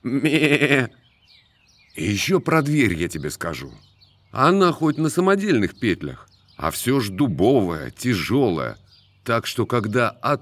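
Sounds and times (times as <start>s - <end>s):
sheep bleating: 0.0s - 1.0s
speech: 0.0s - 1.0s, 2.0s - 10.4s.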